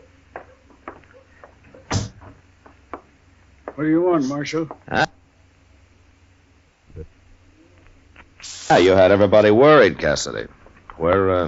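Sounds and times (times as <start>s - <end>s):
door shutting with a solid thud: 1.8s - 2.4s
speech: 3.8s - 5.2s, 8.7s - 11.4s.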